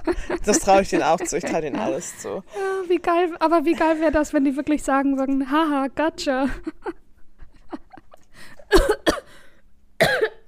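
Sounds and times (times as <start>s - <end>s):
laughter: 0.0s - 3.0s
speech: 0.1s - 7.0s
person coughing in harsh bursts: 8.7s - 9.3s, 10.0s - 10.4s.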